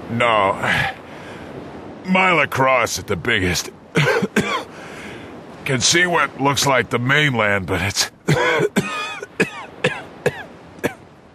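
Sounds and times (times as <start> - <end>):
speech: 0.1 - 1.0, 2.0 - 4.2, 5.6 - 8.9
man's hard racking coughing fit: 4.0 - 4.7, 8.3 - 11.0.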